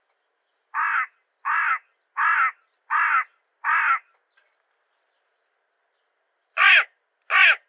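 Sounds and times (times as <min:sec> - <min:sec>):
hooded crow Corvus cornix: 0:00.7 - 0:04.1, 0:06.6 - 0:07.6.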